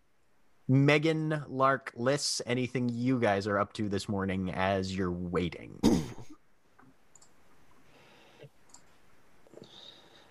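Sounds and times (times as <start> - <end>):
speech: 0.7 - 6.3
keyboard typing clicks: 7.1 - 7.4, 8.6 - 8.9.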